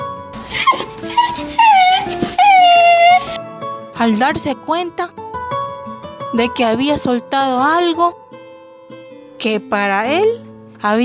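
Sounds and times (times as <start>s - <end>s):
dog whimpering sadly: 0.4s - 3.4s
speech: 4.0s - 5.2s, 6.3s - 8.2s, 9.4s - 11.0s.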